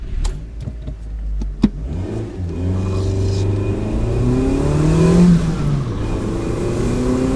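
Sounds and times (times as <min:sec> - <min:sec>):
small car with a 1.5-liter engine accelerating: 0:01.6 - 0:07.3.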